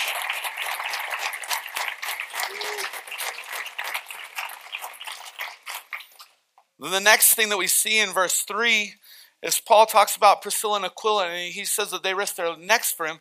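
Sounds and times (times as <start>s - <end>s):
crowd applauding in a large room: 0.0s - 6.1s
speech: 6.8s - 13.2s.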